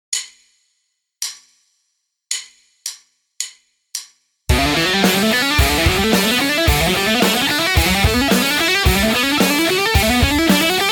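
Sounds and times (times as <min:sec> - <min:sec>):
fast legato playing: 0:04.5 - 0:10.9.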